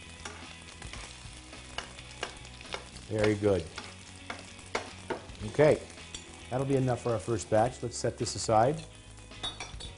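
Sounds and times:
olive oil sizzling in a frying pan: 0:00.0 - 0:09.9
speech: 0:03.1 - 0:03.8, 0:05.4 - 0:05.9, 0:06.5 - 0:09.0.

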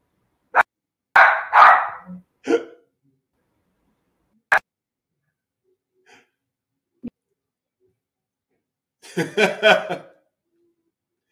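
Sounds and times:
dog barking: 0:00.5 - 0:02.1
laughter: 0:09.0 - 0:10.2.

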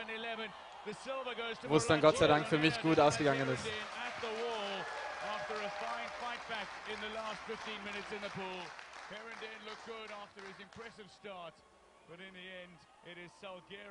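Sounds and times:
live audience cheering and whooping: 0:00.0 - 0:08.3
speech: 0:00.4 - 0:13.8
scattered clapping: 0:02.7 - 0:11.0.

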